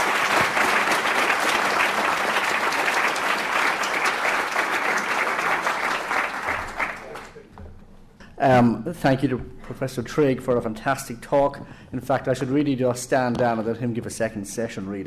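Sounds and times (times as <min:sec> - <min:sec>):
large audience applause welcoming a speaker to the podium: 0:00.0 - 0:07.4
speech: 0:08.4 - 0:15.0.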